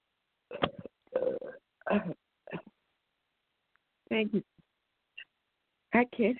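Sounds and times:
short throaty belches: 0.5 - 2.2
speech: 2.0 - 2.2, 4.2 - 4.5, 6.0 - 6.3.

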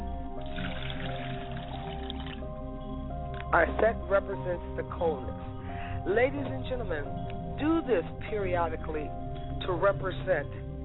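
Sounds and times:
liquid poured out as a libation: 0.4 - 2.5
speech: 3.5 - 10.6.

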